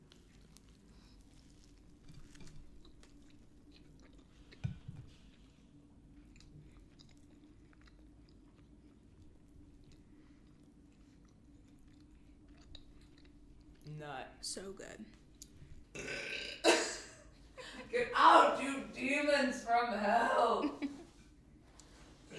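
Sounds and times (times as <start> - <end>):
chewing food loudly: 0.0 - 13.9
speech: 14.0 - 15.2, 17.9 - 20.7.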